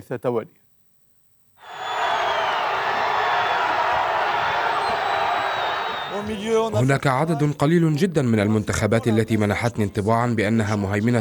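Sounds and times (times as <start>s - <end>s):
speech: 0.0s - 0.6s, 6.2s - 11.1s
dense crowd of football fans roaring and cheering in the streets of Paris: 1.6s - 6.7s.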